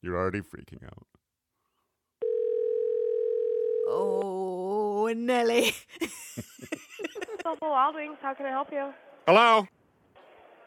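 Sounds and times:
speech: 0.0 - 1.2, 5.1 - 9.8
telephone ringing with a long electronic tone: 2.2 - 3.9
laughter: 6.0 - 7.6.

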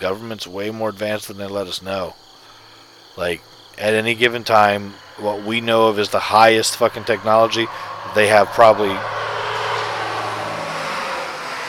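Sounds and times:
speech: 0.0 - 2.3, 3.2 - 9.2
large pickup truck speeding past at about 60 miles per hour: 3.9 - 11.6.

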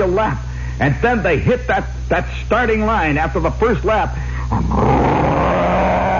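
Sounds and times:
speech: 0.0 - 5.4
voice imitating race cars roaring: 4.5 - 6.1.

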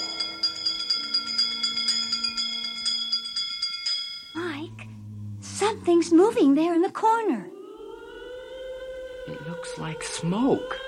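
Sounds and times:
bell ringing rapidly: 0.0 - 4.6
speech: 5.6 - 7.5, 9.6 - 10.8.

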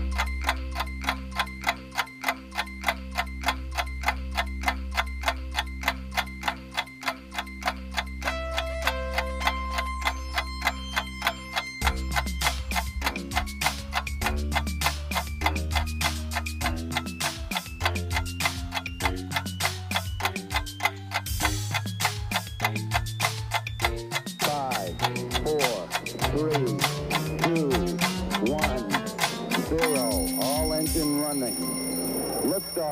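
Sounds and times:
clock ticking for quiz countdown: 0.0 - 32.9
low sustained musical backing: 8.2 - 16.2, 21.4 - 31.6.

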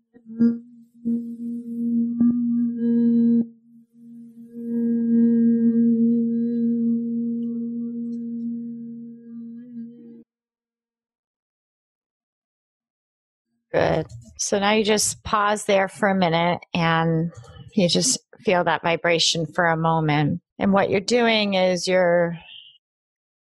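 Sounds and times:
person humming at a low pitch as a breathing exercise: 0.0 - 10.2
speech: 0.3 - 0.6, 14.4 - 22.5.

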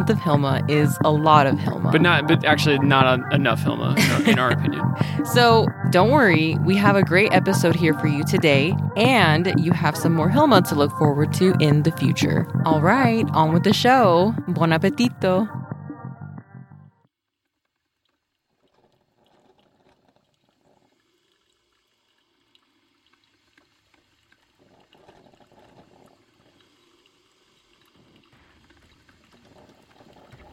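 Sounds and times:
speech: 0.0 - 15.6
laughter: 2.0 - 5.3
coffee machine percolating: 17.4 - 30.5.

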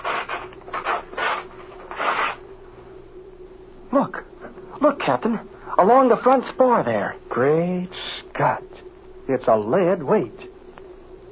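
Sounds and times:
fabric covering ripped off an aircraft wing: 0.0 - 2.4
speech: 4.0 - 4.2, 5.0 - 8.7, 9.3 - 10.5.

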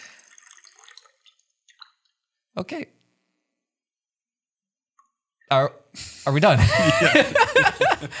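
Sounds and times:
water pouring from a large water bottle: 0.0 - 2.4
speech: 2.6 - 3.0, 5.5 - 8.1
laughter: 6.6 - 8.1.

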